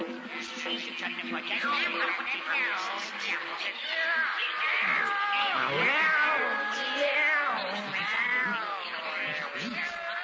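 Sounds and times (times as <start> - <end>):
laughter: 0.1 - 10.2
group of cats meowing and yowling: 3.2 - 10.2.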